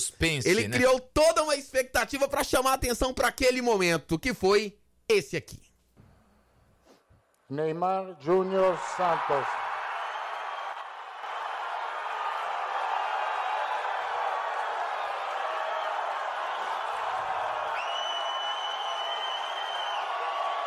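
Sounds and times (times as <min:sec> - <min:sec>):
speech: 0:00.1 - 0:05.7, 0:07.5 - 0:09.6
large indoor crowd of about 1000 guests cheering: 0:08.2 - 0:20.6
whistles: 0:10.0 - 0:10.8, 0:17.7 - 0:20.6.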